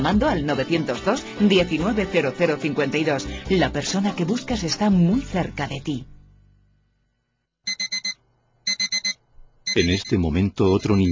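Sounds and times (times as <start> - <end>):
speech: 0.1 - 6.2, 9.8 - 11.0
alarm clock ringing with bright electronic beeps: 7.7 - 11.0.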